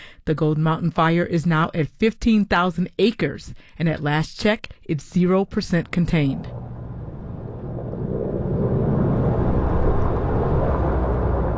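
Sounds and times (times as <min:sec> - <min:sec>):
speech: 0:00.2 - 0:06.7
helicopter flying over smoking mountainside dousing wildfire with water: 0:05.9 - 0:11.5.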